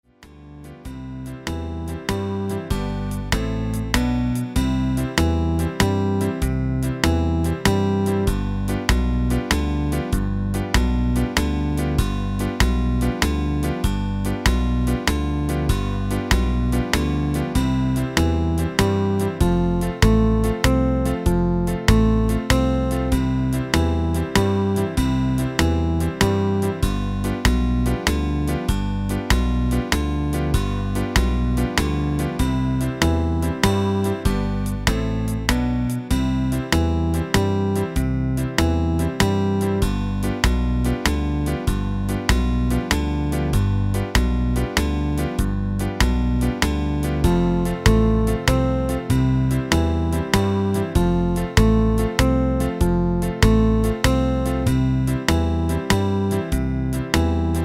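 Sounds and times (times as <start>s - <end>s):
waltz music: 0.2s - 57.6s.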